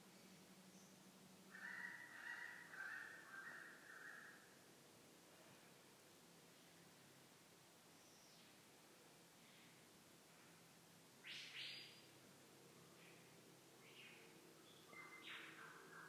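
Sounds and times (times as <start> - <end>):
lyrebird song with flat whistled notes and brief bursts: 0.1 - 4.6, 8.0 - 8.6, 11.2 - 12.2, 12.8 - 16.0.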